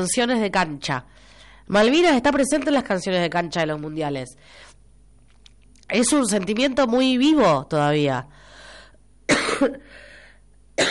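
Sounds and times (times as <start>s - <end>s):
speech: 0.0s - 4.7s, 5.9s - 8.4s, 9.6s - 10.0s
harsh raspy coughs from an itchy throat: 9.3s - 9.9s.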